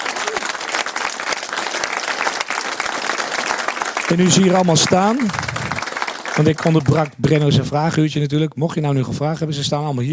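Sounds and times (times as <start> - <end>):
large audience applauding: 0.0 - 7.5
speech: 4.1 - 5.6, 6.4 - 10.1.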